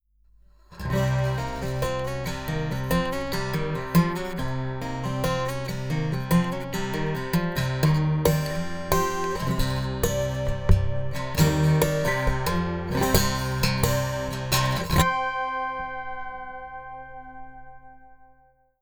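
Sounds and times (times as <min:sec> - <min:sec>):
guitar tapping through a piezo pickup: 0:00.8 - 0:15.2.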